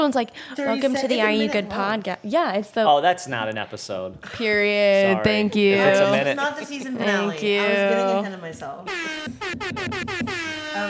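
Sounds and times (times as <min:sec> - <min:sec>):
speech: 0:00.0 - 0:10.8
air horn sound effect: 0:08.9 - 0:10.8.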